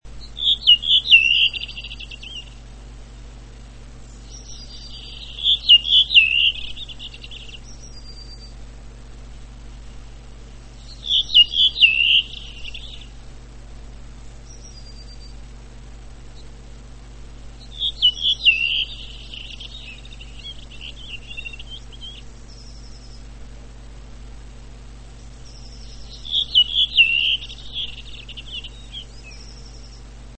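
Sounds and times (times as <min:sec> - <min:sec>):
redwing Turdus iliacus singing: 0:00.3 - 0:02.7, 0:04.2 - 0:08.1, 0:10.7 - 0:13.2, 0:17.5 - 0:23.5, 0:25.2 - 0:30.1.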